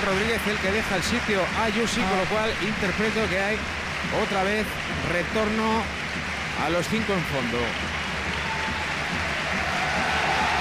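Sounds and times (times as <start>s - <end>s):
speech: 0.0s - 6.0s, 6.6s - 8.0s
large football stadium crowd cheering in an ovation: 0.0s - 10.5s.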